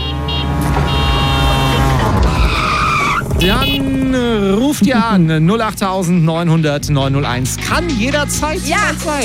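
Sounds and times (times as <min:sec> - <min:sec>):
tuk-tuk engine whine: 0:00.0 - 0:06.3
tuk-tuk tyres screeching in a skid: 0:00.6 - 0:04.7
speech: 0:03.4 - 0:03.8, 0:04.7 - 0:09.2.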